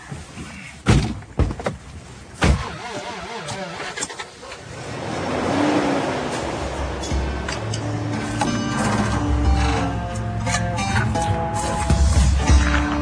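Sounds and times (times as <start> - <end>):
car engine starting up: 2.4 - 12.9.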